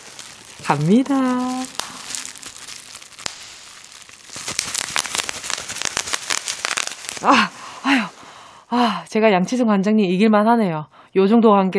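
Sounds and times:
bubble wrap popped by hand: 0:00.0 - 0:08.4
speech: 0:00.7 - 0:01.8, 0:07.2 - 0:08.0, 0:09.1 - 0:11.7.

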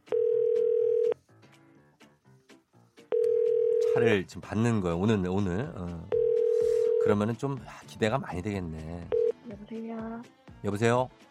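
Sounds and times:
telephone line tone while connecting a call: 0:00.0 - 0:01.2, 0:03.2 - 0:04.1, 0:06.1 - 0:07.2, 0:09.1 - 0:09.4
speech: 0:04.0 - 0:06.2, 0:07.0 - 0:11.2.

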